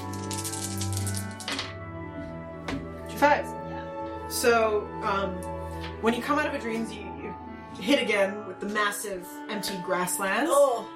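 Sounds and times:
several dice rattling and clattering: 0.1 - 1.7
speech: 4.4 - 10.9.

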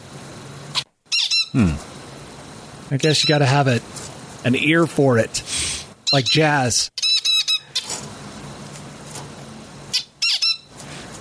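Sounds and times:
bird squawking: 1.1 - 1.6, 7.0 - 7.9, 9.9 - 10.7
speech: 1.5 - 1.9, 2.9 - 7.0.

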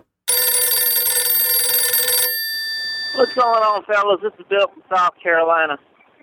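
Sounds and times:
telephone bell ringing with a dense metallic trill: 0.3 - 3.8
speech: 3.2 - 5.9.

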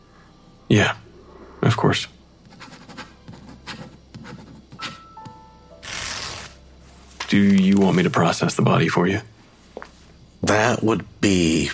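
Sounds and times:
speech: 0.7 - 1.0, 1.6 - 2.2, 7.3 - 9.3, 10.5 - 11.7
pen scratching on paper: 2.5 - 5.0
paper being handled: 5.8 - 8.4.

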